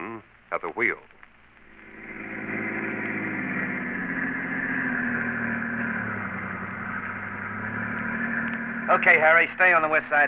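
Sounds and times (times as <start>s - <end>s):
speech: 0.5s - 1.2s, 8.9s - 10.2s
car engine humming while driving on the West Side Highway: 1.5s - 10.2s.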